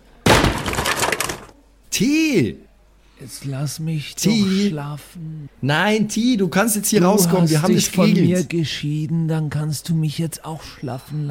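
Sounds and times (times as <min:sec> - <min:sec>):
broom rack kicked hard and crashing: 0:00.2 - 0:01.5
debris rattling and clattering: 0:00.3 - 0:01.6
speech: 0:01.9 - 0:02.6, 0:03.2 - 0:11.3.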